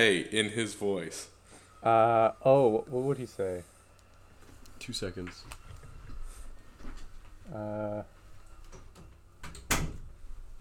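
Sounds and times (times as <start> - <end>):
speech: 0.0 - 3.7, 4.8 - 5.6, 7.5 - 8.1
door creaking as it swings: 6.8 - 10.2
door closing with a sharp thud: 9.4 - 10.2.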